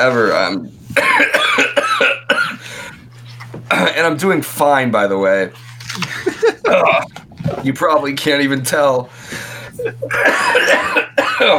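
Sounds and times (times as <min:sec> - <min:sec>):
speech: 0:00.0 - 0:01.6, 0:03.7 - 0:11.5
person coughing: 0:01.0 - 0:02.6, 0:06.6 - 0:07.1, 0:09.9 - 0:11.5
laughter: 0:06.0 - 0:07.1, 0:09.7 - 0:10.8.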